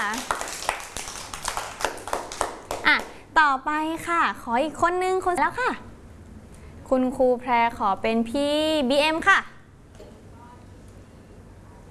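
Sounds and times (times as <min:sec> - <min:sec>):
group of children clapping hands: 0:00.0 - 0:03.2
speech: 0:02.9 - 0:05.9, 0:06.9 - 0:09.5.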